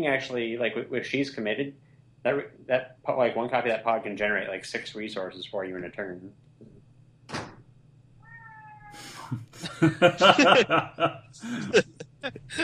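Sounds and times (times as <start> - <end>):
speech: 0.0 - 6.4, 8.9 - 12.6
low steady hum: 0.0 - 8.4, 9.3 - 12.6
cat meowing: 8.2 - 9.3
people chuckling with laughter: 9.3 - 12.6.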